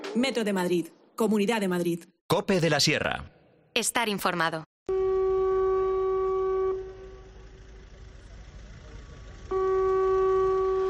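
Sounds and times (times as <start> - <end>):
speech: 0.2 - 4.7
dam alarm sirens at the Navacerrada reservoir warning of possible dam failure: 4.9 - 10.8.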